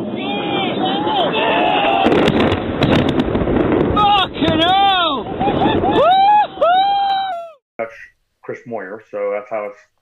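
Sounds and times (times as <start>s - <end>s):
bombs dropping and exploding heard over a radio-like channel: 0.0s - 6.5s
speech: 8.7s - 9.9s.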